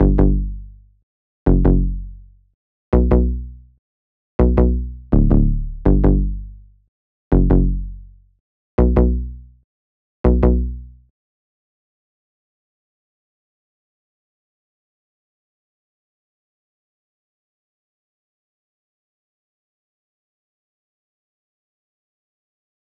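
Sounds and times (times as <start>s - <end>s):
Moog One synth bass in B minor at 164 BPM: 0.0s - 0.8s, 1.5s - 2.2s, 3.0s - 3.6s, 4.4s - 6.7s, 7.3s - 8.2s, 8.8s - 9.4s, 10.3s - 10.9s.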